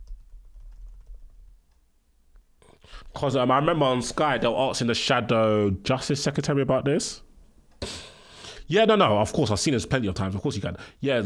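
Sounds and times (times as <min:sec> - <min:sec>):
faint typing on a computer keyboard: 0:00.0 - 0:03.0
speech: 0:03.2 - 0:08.0, 0:08.7 - 0:11.2.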